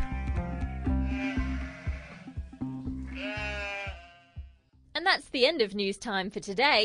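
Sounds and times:
sheep bleating: 0.0s - 4.7s
speech: 5.2s - 6.8s.

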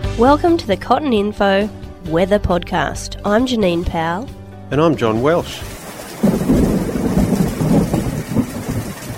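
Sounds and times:
speech: 0.2s - 6.4s
rain drumming on a roof: 5.6s - 9.1s
deep rumbling: 5.7s - 9.1s.

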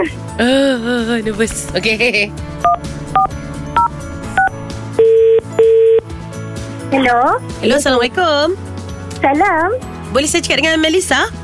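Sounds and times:
speech: 0.0s - 3.3s, 6.9s - 11.4s
phone ringing tones: 2.6s - 6.1s.

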